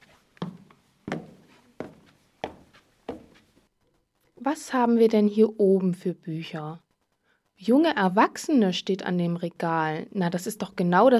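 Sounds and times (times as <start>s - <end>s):
heavy footsteps climbing a staircase to an upper floor: 0.0s - 3.7s
speech: 4.5s - 6.8s, 7.6s - 11.1s.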